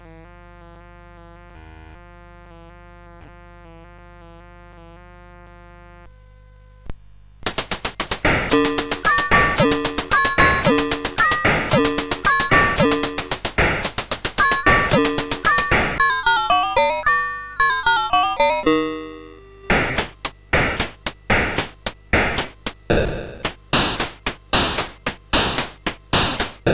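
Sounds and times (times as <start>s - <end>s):
CSG8580R5 drone: 7.5s - 26.6s.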